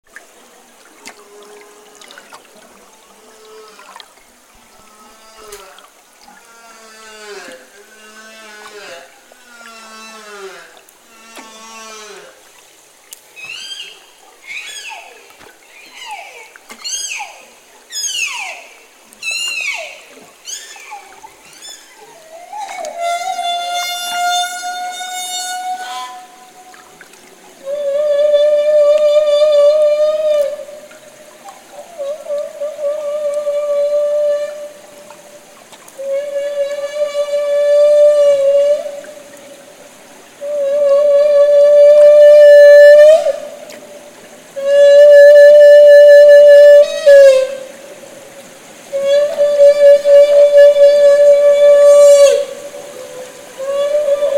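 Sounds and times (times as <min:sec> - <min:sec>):
humpback whale bubble net feeding: 0:00.0 - 0:54.3.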